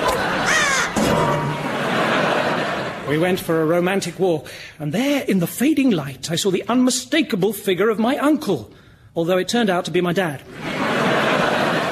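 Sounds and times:
laughter: 0.0s - 3.4s, 10.5s - 11.9s
seagull squawking at a beach: 0.2s - 1.0s
speech: 3.1s - 10.9s.

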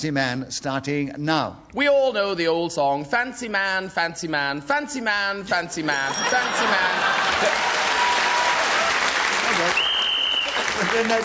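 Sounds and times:
speech: 0.0s - 7.9s, 10.8s - 11.2s
laughter: 5.9s - 8.5s
audience applause: 6.6s - 11.2s.

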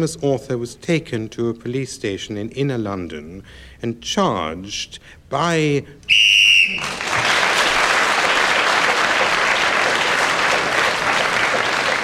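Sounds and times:
speech: 0.0s - 7.2s
short shrill whistle blast ending a round of a speaking game: 6.1s - 7.0s
loud steady applause and cheering: 6.7s - 12.0s.

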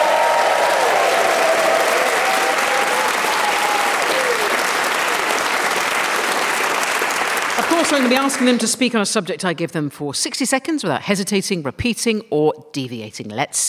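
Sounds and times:
studio audience whistles and whoops: 0.0s - 4.7s
studio audience applause: 0.0s - 8.8s
speech: 7.6s - 13.6s.

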